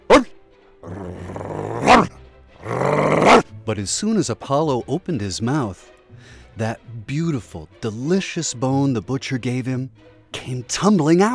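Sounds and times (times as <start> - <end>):
dog barking at its reflection in a stream: 0.0 - 3.4
speech: 3.7 - 11.3.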